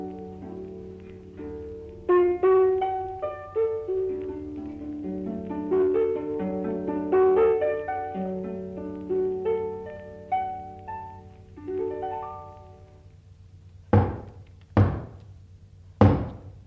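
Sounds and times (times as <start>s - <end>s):
plucked melodic tones: 0.0s - 13.1s
heavy knocks pounding on a door: 13.9s - 15.2s, 16.0s - 16.6s.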